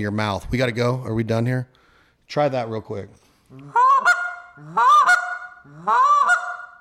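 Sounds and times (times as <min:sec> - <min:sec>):
speech: 0:00.0 - 0:03.8, 0:04.6 - 0:05.1, 0:05.8 - 0:06.5
Canada goose honks blown on a goose call: 0:03.6 - 0:06.8.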